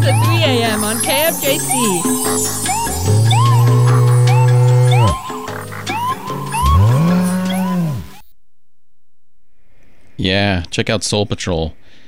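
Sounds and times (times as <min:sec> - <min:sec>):
chirping croaking calls: 0:00.0 - 0:08.2
speech: 0:00.1 - 0:03.1, 0:10.2 - 0:11.9
cow mooing: 0:02.8 - 0:08.2.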